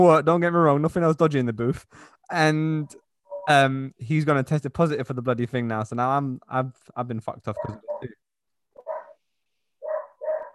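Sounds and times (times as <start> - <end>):
speech: 0.0 - 8.2
dog barking: 7.6 - 8.1, 8.8 - 9.2, 9.8 - 10.5.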